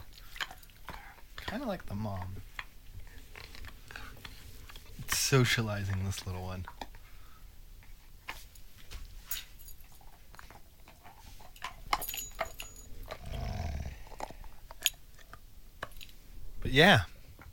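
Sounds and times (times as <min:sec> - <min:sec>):
clicking, chewing-like snaps and gnawing sounds: 0:00.0 - 0:07.0, 0:09.8 - 0:16.1
speech: 0:01.5 - 0:02.5, 0:05.1 - 0:06.8, 0:16.7 - 0:17.1
dog growling low: 0:12.8 - 0:14.7.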